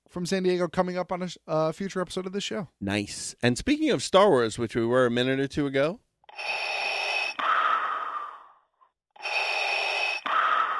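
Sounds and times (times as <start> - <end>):
speech: 0.2 - 6.7
toy mechanical respirator breathing effect: 6.3 - 8.6, 9.2 - 10.7.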